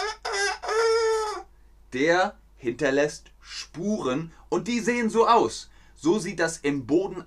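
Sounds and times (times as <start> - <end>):
rooster crowing: 0.0 - 1.5
speech: 1.9 - 7.2.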